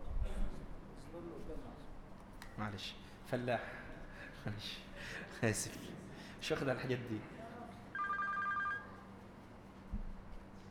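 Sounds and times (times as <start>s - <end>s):
room hum: 0.0s - 10.6s
speech: 1.1s - 2.0s, 2.6s - 7.4s
warbling electronic telephone ring during a lesson: 8.0s - 9.0s.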